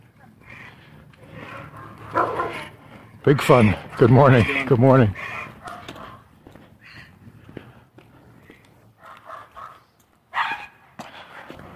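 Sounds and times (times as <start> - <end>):
low outdoor rumble: 0.0 - 9.0
several dogs barking behind a fence: 0.2 - 2.9, 3.6 - 6.4, 9.0 - 11.7
speech: 3.2 - 5.3.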